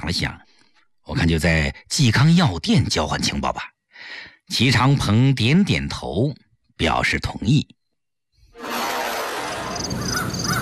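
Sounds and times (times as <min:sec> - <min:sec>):
speech: 0:00.0 - 0:00.5, 0:01.1 - 0:07.8
macaw giving a long harsh raspy squawk: 0:09.9 - 0:10.6.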